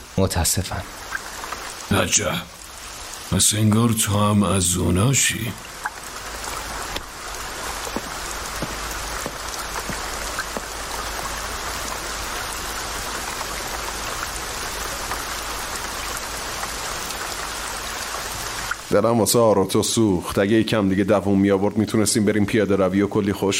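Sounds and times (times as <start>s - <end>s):
steady pouring rain: 0.0s - 23.5s
speech: 0.2s - 1.2s, 1.9s - 2.6s, 3.3s - 5.8s, 19.0s - 23.5s
sharp drips and patters: 0.6s - 3.4s, 4.6s - 19.0s.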